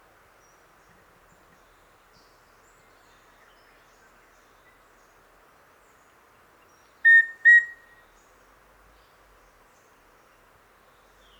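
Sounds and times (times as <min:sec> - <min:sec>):
faint background hiss: 0:00.0 - 0:11.3
rufous-breasted antthrush Formicarius rufipectus piping whistles: 0:07.1 - 0:07.9.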